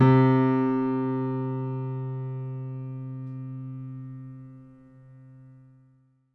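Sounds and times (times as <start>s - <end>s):
acoustic piano: 0.0s - 5.6s.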